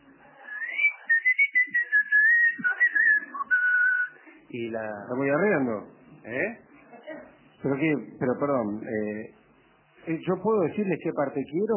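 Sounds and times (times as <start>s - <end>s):
person whistling a call: 0.5s - 4.2s
speech: 4.5s - 6.7s, 7.6s - 9.4s, 10.0s - 11.7s.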